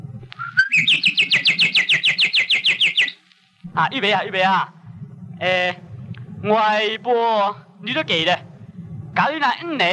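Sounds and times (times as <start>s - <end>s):
magpie chirping: 0.4s - 3.2s
speech: 3.8s - 4.8s, 5.4s - 5.8s, 6.4s - 8.5s, 9.2s - 9.9s.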